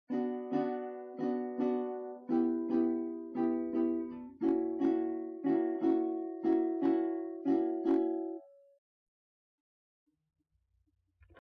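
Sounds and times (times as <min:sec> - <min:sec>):
beginner practising Bm Em F#7 chord triads: 0:00.1 - 0:08.6.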